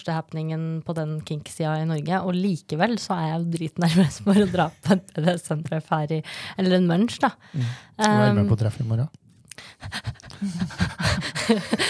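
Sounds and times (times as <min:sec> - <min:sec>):
speech: 0:00.0 - 0:11.8
person panting heavily: 0:07.5 - 0:07.9, 0:09.6 - 0:11.8
laughter: 0:10.4 - 0:11.8.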